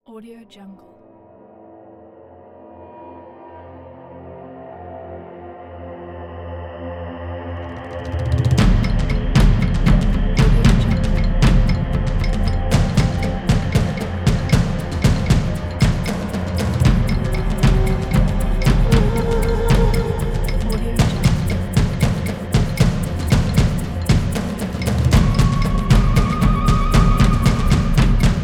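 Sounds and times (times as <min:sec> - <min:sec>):
tribal percussion: 0:07.8 - 0:28.4.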